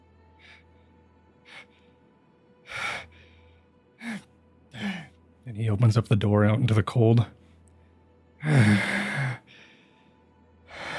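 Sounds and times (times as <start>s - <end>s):
heavy panicked breathing with short sharp breaths and gasps: 0.4s - 0.8s, 1.4s - 2.0s, 2.6s - 5.2s, 8.4s - 10.1s, 10.7s - 10.9s
speech: 5.5s - 7.4s.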